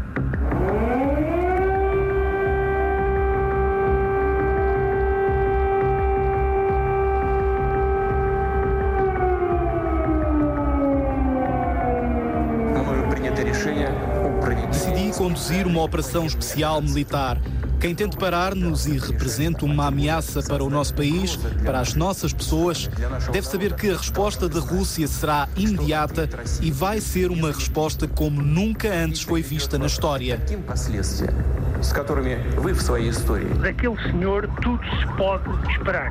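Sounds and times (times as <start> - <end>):
air raid siren wailing in Europe during wartime: 0.1 - 17.7
speech: 15.2 - 36.0.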